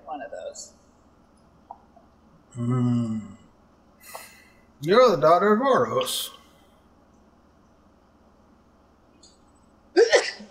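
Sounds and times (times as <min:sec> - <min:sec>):
speech: 0:00.6 - 0:00.8, 0:02.6 - 0:03.4, 0:04.8 - 0:06.4
sneeze: 0:10.0 - 0:10.5.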